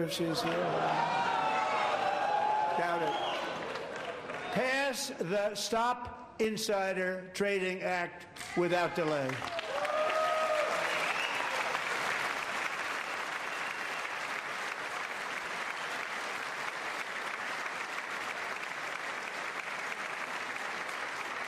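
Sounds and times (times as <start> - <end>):
speech: 0.0 - 1.4, 2.8 - 3.4, 4.5 - 9.6
audience applause: 0.0 - 4.7, 9.0 - 21.4
whistle or shout: 3.0 - 3.5.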